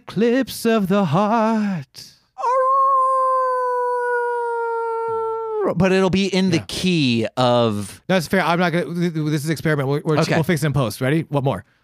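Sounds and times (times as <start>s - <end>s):
speech: 0.2s - 2.2s, 5.6s - 11.8s
person imitating a wolf howl to end a sung song: 2.4s - 5.7s.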